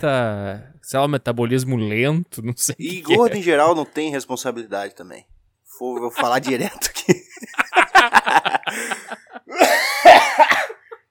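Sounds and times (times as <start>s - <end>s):
speech: 0.0s - 10.8s
laughter: 5.8s - 11.1s
former smoker coughing set off by laughing: 9.5s - 11.0s.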